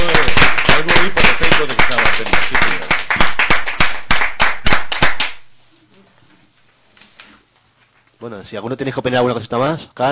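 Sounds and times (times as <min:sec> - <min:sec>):
hands clapping in applause: 0:00.0 - 0:05.5
speech: 0:08.5 - 0:10.0.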